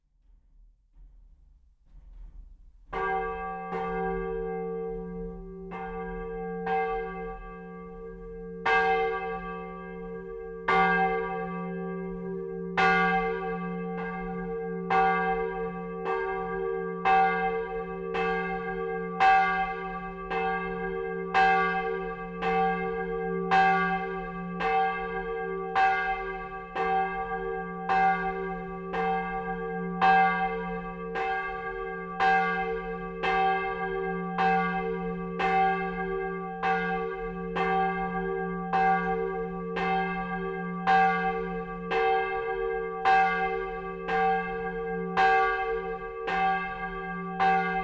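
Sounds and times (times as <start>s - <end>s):
church bell ringing: 2.9s - 47.8s.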